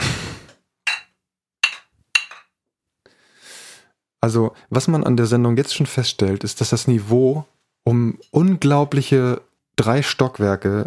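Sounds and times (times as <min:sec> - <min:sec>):
glasses clinking in a toast: 0:00.9 - 0:02.5
speech: 0:04.2 - 0:10.8.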